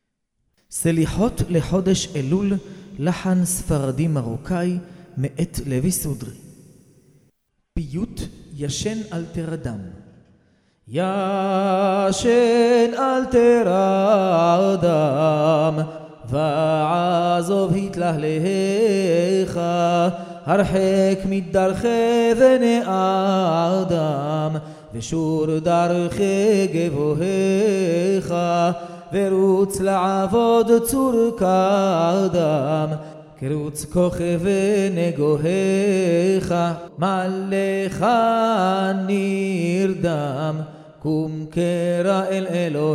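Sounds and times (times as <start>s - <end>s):
recorded selichot prayer in Morocco: 0.7s - 6.8s, 7.8s - 10.2s, 10.9s - 42.9s.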